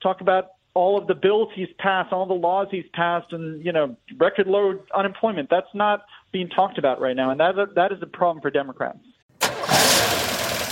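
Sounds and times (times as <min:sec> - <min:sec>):
speech: 0:00.0 - 0:09.1
car engine starting into a rough rumbling run: 0:09.3 - 0:10.7.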